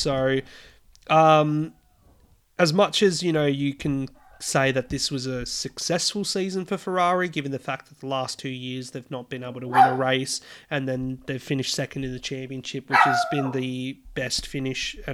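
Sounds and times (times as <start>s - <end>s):
speech: 0.0s - 1.8s, 2.6s - 15.1s
small poodle barking: 9.7s - 10.1s, 12.9s - 13.6s.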